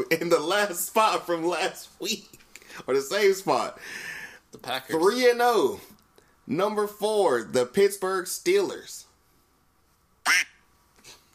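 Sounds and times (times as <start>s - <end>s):
speech: 0.0s - 9.1s, 10.2s - 10.5s
duck quacking: 10.2s - 10.6s.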